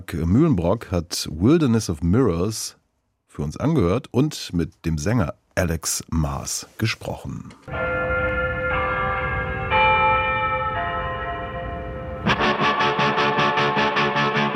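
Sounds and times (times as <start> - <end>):
speech: 0.0 - 2.8, 3.4 - 8.3
church bell ringing: 7.7 - 14.4.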